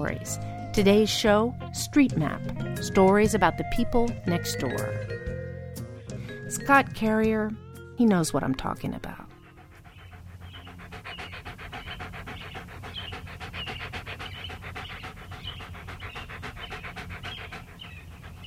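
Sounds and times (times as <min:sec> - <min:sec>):
speech: 0:00.0 - 0:05.3, 0:06.5 - 0:09.2
dog panting rapidly: 0:08.8 - 0:18.4.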